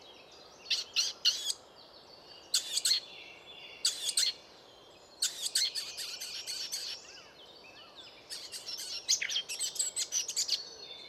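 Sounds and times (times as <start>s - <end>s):
Eurasian blackcap Sylvia atricapilla clicking calls: 0.7s - 1.6s, 2.5s - 3.0s, 3.8s - 4.4s, 5.2s - 7.2s, 8.3s - 10.6s.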